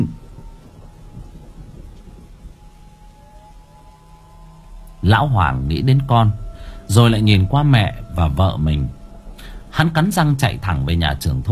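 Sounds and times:
heavy rain during a night thunderstorm over a village: 0.0s - 11.5s
low rumbling thunder: 0.0s - 11.5s
speech: 5.0s - 9.0s, 9.8s - 11.5s.

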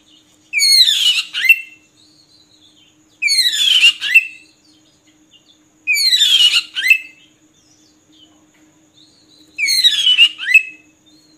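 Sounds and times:
oriental magpie-robin harsh buzzy chattering song with whistled endings: 0.0s - 4.7s, 5.4s - 7.3s, 9.0s - 11.3s.

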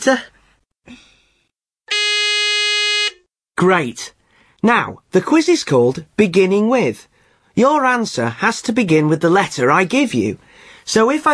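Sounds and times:
speech: 0.0s - 1.1s, 3.6s - 11.3s
quiz buzzer triggered by pressing a phone button: 1.9s - 3.2s.

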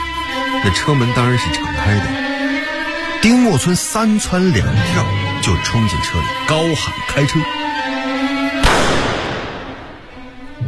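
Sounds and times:
speech: 0.5s - 2.3s, 3.2s - 8.4s
gunshot: 8.6s - 10.0s.

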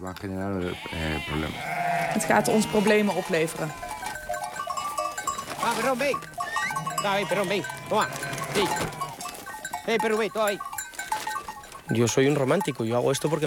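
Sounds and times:
speech: 0.0s - 4.0s, 5.7s - 6.3s, 7.0s - 9.0s, 9.8s - 10.7s, 11.9s - 13.4s
flock of sheep bleating while herded into an iron pen: 0.5s - 9.4s.

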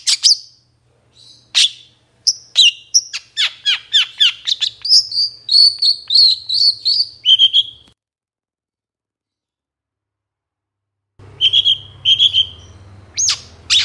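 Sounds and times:
Long-tailed Shrike warbling high chirps and thin whistled notes: 1.2s - 7.9s, 11.3s - 13.8s.

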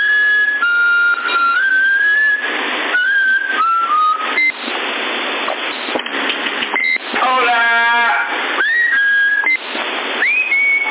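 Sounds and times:
whistling over a CB radio channel near 27075 kHz in Sassari: 0.0s - 4.8s, 6.8s - 7.1s, 8.6s - 10.8s
hissing narrow CB radio band: 4.5s - 8.8s, 9.6s - 10.8s.

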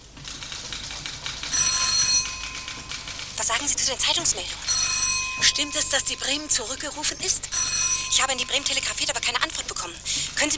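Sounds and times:
steady crackly noise: 0.0s - 10.5s
telephone bells ringing in a shipping line office in New York: 1.4s - 10.5s
speech: 3.6s - 4.8s, 5.4s - 10.5s.

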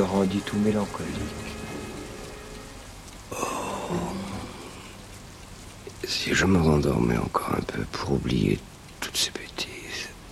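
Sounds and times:
raindrops pattering on a zinc roof: 0.0s - 10.2s
speech: 0.1s - 1.6s, 3.9s - 4.3s, 6.0s - 9.5s.

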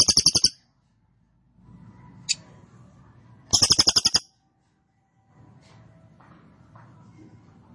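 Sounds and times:
cililin rattling trill: 0.0s - 0.6s, 3.5s - 4.2s
quiet background noise: 0.0s - 7.7s.

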